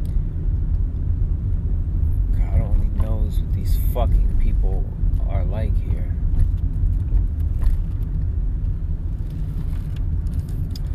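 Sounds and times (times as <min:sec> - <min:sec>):
car engine rumble in a parking area: 0:00.0 - 0:10.9
speech: 0:03.3 - 0:06.1.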